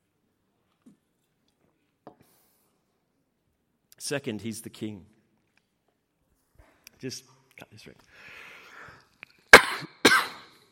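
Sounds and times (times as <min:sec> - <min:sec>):
speech: 0:04.0 - 0:05.2, 0:07.0 - 0:08.4
person coughing: 0:09.5 - 0:10.7.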